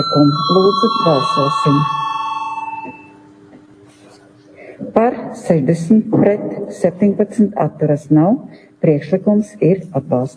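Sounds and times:
speech: 0.0 - 2.0, 5.4 - 10.3
electric bell rung in a parliament chamber to call a vote: 0.0 - 3.4.

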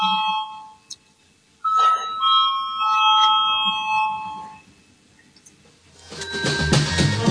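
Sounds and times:
bell rung to call a vote on a committee proposal: 0.0 - 0.9, 1.6 - 4.7, 6.0 - 7.2.

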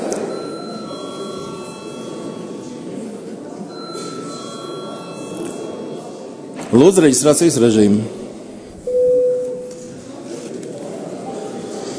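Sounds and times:
electric bell rung to call members to register in a parliamentary session: 0.3 - 2.8, 3.7 - 6.3
speech: 6.7 - 8.2.

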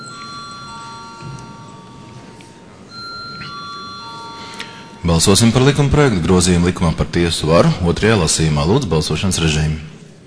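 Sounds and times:
parliamentary voting bell before a vote on a bill: 0.0 - 7.2
speech: 5.0 - 10.0.

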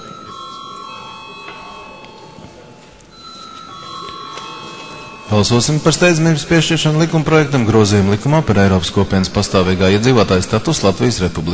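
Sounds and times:
parliament voting bell rung by the chair: 0.0 - 6.8
faint parliament chamber murmur: 0.0 - 11.5
speech: 5.3 - 11.5.

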